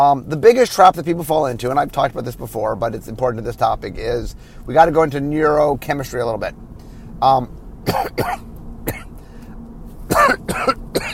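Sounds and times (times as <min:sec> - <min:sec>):
speech: 0:00.0 - 0:09.1, 0:10.1 - 0:11.1
man coughing in harsh hacking bursts: 0:07.8 - 0:09.2, 0:10.1 - 0:11.1.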